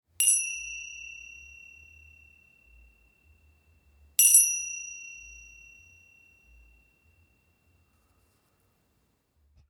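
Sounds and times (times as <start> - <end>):
medium 6.5 cm golden tingsha cymbals ringing: 0.2 - 7.9.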